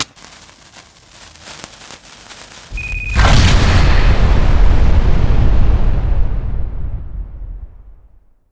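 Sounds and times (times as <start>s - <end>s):
bomb explosion: 2.7s - 8.3s.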